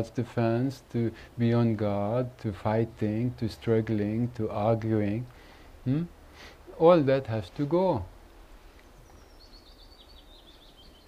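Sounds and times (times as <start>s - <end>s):
speech: 0.0s - 8.1s
steady low outdoor rumble: 0.0s - 11.0s
bird chirping and warbling: 8.8s - 11.0s.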